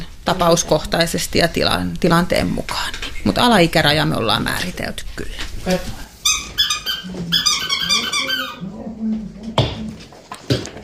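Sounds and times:
speech: 0.3 - 6.0
dog whining and yelping: 6.2 - 8.8.

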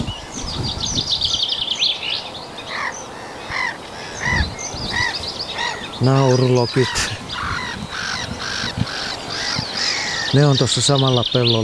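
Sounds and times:
common chaffinch singing bright descending trilled phrases: 0.0 - 11.6
harsh crow-like caws: 2.7 - 10.4
speech: 6.0 - 7.1, 10.3 - 11.6.

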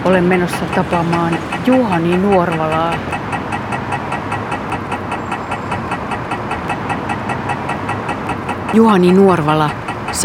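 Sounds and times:
speech: 0.0 - 3.2, 8.7 - 10.2
pedestrian crossing signal at traffic lights ticking: 0.0 - 10.2
rumble of car engines and street traffic: 0.0 - 10.2.

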